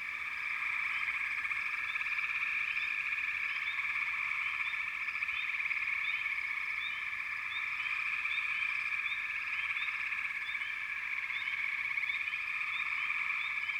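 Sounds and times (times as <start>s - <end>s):
frog chorus trilling in a constant high buzz: 0.0s - 13.7s.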